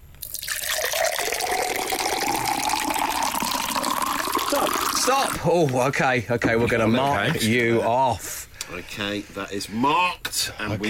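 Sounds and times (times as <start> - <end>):
water poured into a container on a desk: 0.2 - 5.4
speech: 5.1 - 10.8.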